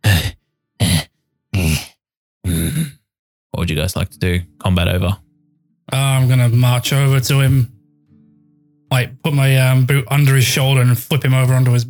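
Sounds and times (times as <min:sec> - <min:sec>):
voice imitating labored groaning breaths of a figure lying on the floor: 0:00.0 - 0:03.0
speech: 0:03.7 - 0:05.2, 0:05.9 - 0:07.7, 0:08.9 - 0:11.8.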